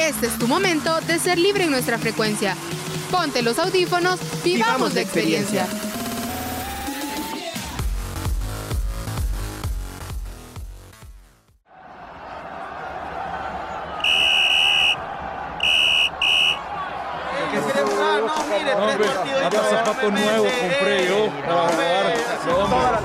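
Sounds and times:
music: 0:00.0 - 0:11.6, 0:15.1 - 0:23.0
speech: 0:00.1 - 0:05.8
loud stadium crowd roar: 0:11.7 - 0:23.0
referee's whistle ending a football match: 0:14.0 - 0:15.0, 0:15.6 - 0:16.7.

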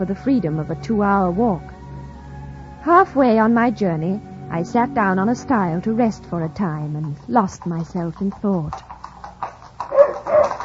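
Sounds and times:
speech: 0:00.0 - 0:01.7, 0:02.8 - 0:08.9
horse hooves clip-clopping: 0:05.0 - 0:10.6
dog barking: 0:09.9 - 0:10.6.

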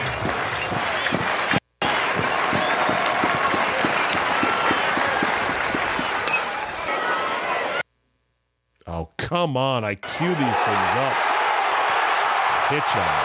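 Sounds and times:
rhythmic clapping or stomping: 0:00.0 - 0:06.7
packed baseball stadium crowd cheering: 0:00.0 - 0:07.8, 0:10.0 - 0:13.2
speech: 0:09.3 - 0:11.3, 0:12.7 - 0:13.2.

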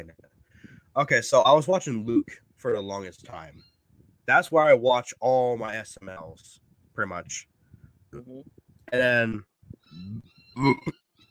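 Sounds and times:
speech: 0:01.0 - 0:03.7, 0:04.3 - 0:07.5, 0:08.1 - 0:11.0
hiccup-like gulp: 0:09.9 - 0:11.1
low throaty burp: 0:09.9 - 0:11.2.

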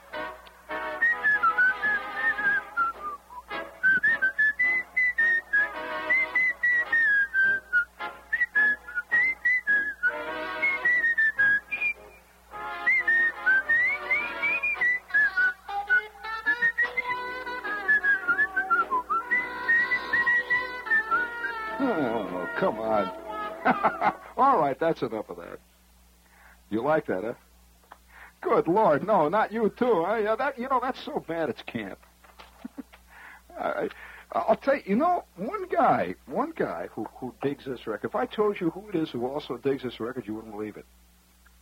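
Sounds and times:
faint steady hum: 0:00.0 - 0:41.6
person whistling a wandering melody: 0:00.9 - 0:12.2, 0:12.8 - 0:23.0
laughter: 0:23.6 - 0:24.4
speech: 0:24.8 - 0:25.7, 0:26.7 - 0:27.4, 0:28.5 - 0:32.1, 0:33.6 - 0:41.0.

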